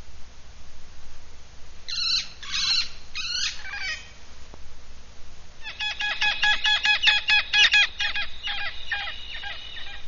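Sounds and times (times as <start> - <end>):
Hispaniolan parrot Amazona ventralis squawking and chattering: 1.9 - 4.2, 5.6 - 10.0.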